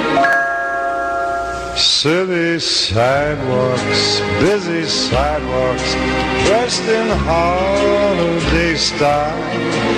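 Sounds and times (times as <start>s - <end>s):
bell ringing: 0.2s - 2.1s
speech: 1.8s - 9.9s.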